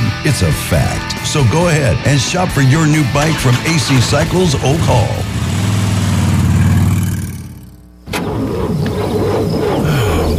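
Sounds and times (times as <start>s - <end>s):
speech: 0.3s - 5.3s
car engine cranking but failing to start on a dead battery: 3.0s - 10.3s.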